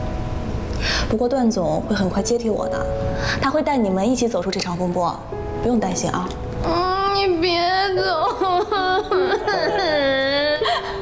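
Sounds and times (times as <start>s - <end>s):
speech: 1.0s - 10.9s
person crying: 8.0s - 11.0s.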